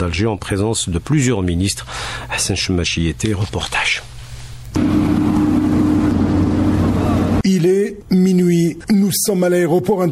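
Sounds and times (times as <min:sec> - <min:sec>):
speech: 0:00.0 - 0:04.1, 0:07.6 - 0:10.1
loud steady engine drone: 0:04.8 - 0:07.4.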